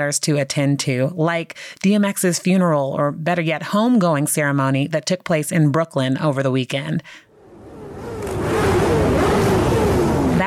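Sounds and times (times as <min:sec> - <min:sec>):
speech: 0:00.0 - 0:07.3
motorcycles, dirt bikes and four-wheelers revving: 0:07.4 - 0:10.4.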